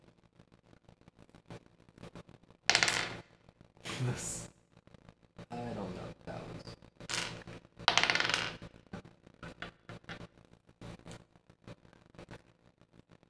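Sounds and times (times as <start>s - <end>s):
dice clattering across a hard tabletop in a game: 2.7s - 3.3s, 7.1s - 8.9s, 9.5s - 10.3s
speech: 4.0s - 4.5s.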